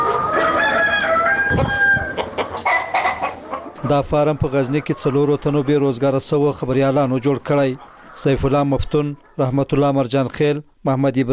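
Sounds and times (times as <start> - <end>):
rooster crowing on a poultry farm: 0.0 - 3.2
chickens clucking and squawking on a poultry farm: 0.0 - 11.3
speech: 1.5 - 1.8, 3.9 - 11.3.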